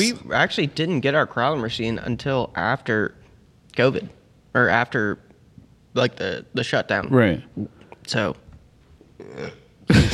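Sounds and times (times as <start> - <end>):
speech: 0.0 - 3.2, 3.8 - 5.2, 6.0 - 8.4, 9.2 - 10.1
burp: 9.2 - 9.8.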